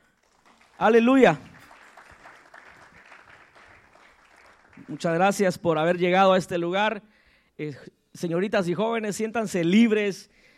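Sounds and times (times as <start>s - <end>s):
audience applause: 0.0s - 5.4s
speech: 0.8s - 1.5s, 4.9s - 10.5s.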